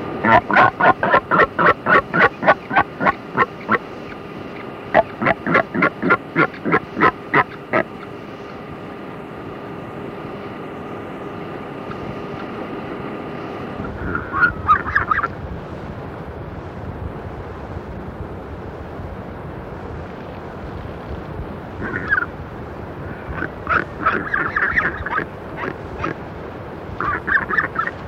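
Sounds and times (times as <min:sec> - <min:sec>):
Southern Royal Albatross calling: 0:00.2 - 0:08.2, 0:13.8 - 0:15.3, 0:21.8 - 0:22.3, 0:23.1 - 0:26.2, 0:26.9 - 0:28.0.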